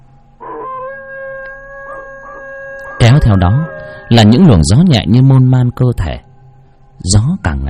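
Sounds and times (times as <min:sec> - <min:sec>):
stray dogs howling on a distant mountain slope: 0:00.4 - 0:04.8
speech: 0:03.1 - 0:06.3, 0:07.0 - 0:07.6.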